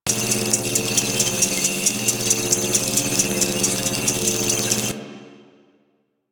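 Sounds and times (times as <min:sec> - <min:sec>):
timer sound loop: 0:00.1 - 0:05.0.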